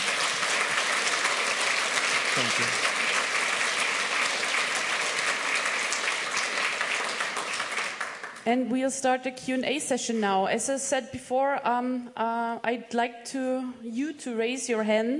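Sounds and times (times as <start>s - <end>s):
sizable audience applause: 0.0s - 8.4s
speech: 2.4s - 2.9s, 8.5s - 15.1s.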